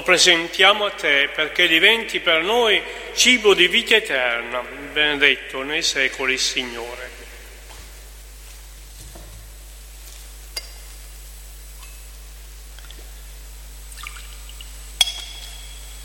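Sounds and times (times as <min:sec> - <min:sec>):
speech: 0:00.0 - 0:07.0
quiet hum: 0:00.0 - 0:16.0
water trickling into wine in a chalice: 0:13.9 - 0:16.0.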